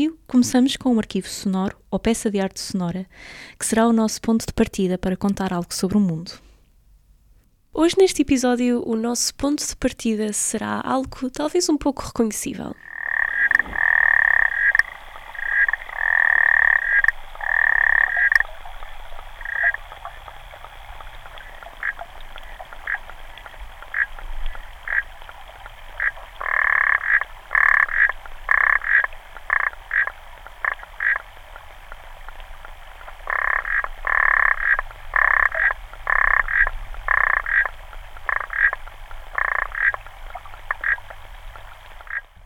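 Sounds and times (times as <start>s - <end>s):
speech: 0.0s - 6.5s, 7.7s - 12.9s
faint steady hiss: 0.0s - 42.4s
African clawed frog calling in metallic clicking trills: 12.8s - 18.8s, 19.4s - 20.2s, 21.3s - 31.3s, 31.9s - 41.2s, 42.0s - 42.3s.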